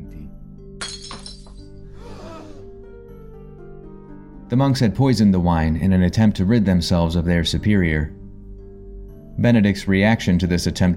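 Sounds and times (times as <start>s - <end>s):
cup shattering: 0.8s - 1.7s
speech: 4.5s - 8.2s, 9.4s - 10.9s.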